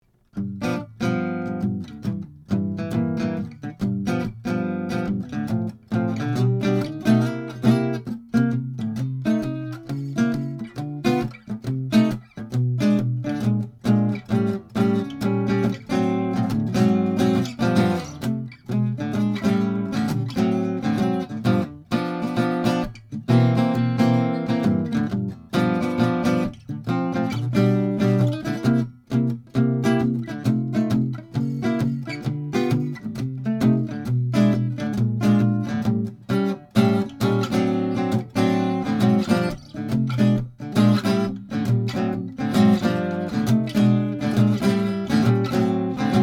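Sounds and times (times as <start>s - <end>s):
jazz on a 1933 Gibson L10 archtop guitar: 0.2s - 46.2s.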